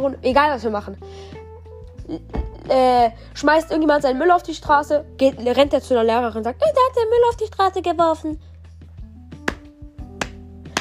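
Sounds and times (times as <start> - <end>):
speech: 0.0 - 1.4, 2.1 - 8.5
hand slapping on thigh: 9.3 - 10.7.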